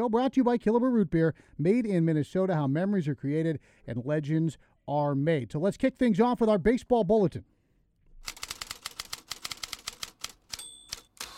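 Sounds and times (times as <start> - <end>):
speech: 0.0 - 7.5
mechanical typewriter keystrokes: 8.3 - 11.3
typewriter carriage-return ding: 10.5 - 11.3.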